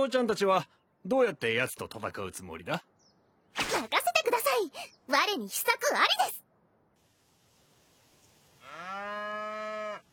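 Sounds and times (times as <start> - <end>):
speech: 0.0 - 2.9, 4.6 - 6.4
cow mooing: 8.6 - 10.1.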